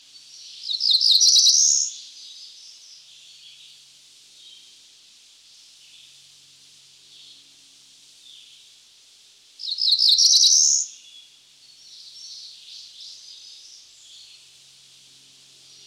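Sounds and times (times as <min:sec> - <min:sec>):
Cerulean Warbler Setophaga cerulea singing: 0:00.2 - 0:03.8, 0:09.6 - 0:14.4.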